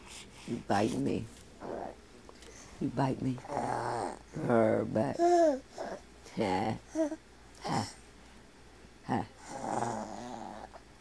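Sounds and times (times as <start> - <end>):
speech: 0.4 - 1.4, 2.8 - 5.8, 6.4 - 8.0, 9.1 - 9.6
dog growling: 1.6 - 2.0, 3.4 - 6.0, 9.4 - 10.9.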